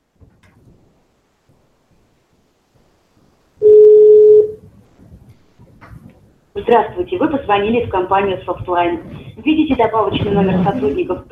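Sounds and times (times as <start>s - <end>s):
loud steady telephone keypad dialing tone: 3.6s - 4.6s
speech: 6.6s - 11.3s.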